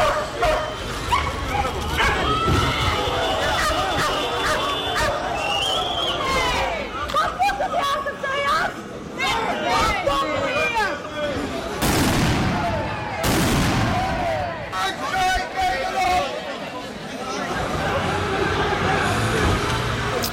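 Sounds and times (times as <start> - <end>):
police dogs barking and yelping: 0.0 - 2.4, 3.4 - 5.2
crowd of demonstrators shouting: 0.0 - 20.1
firework blasts at a street protest: 11.8 - 14.4.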